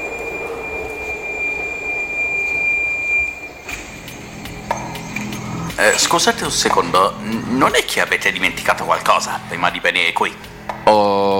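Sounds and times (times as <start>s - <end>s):
high thin metallic whine of a subway train: 0.0s - 10.9s
subway train running with a loud rumble: 0.0s - 11.3s
sharp clanks: 3.5s - 9.7s
speech: 5.8s - 11.0s.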